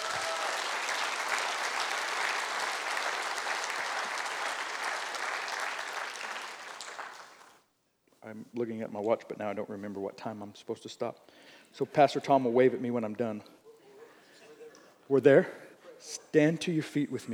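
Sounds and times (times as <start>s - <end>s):
large audience applauding: 0.0s - 7.6s
speech: 8.3s - 13.6s, 15.1s - 17.3s.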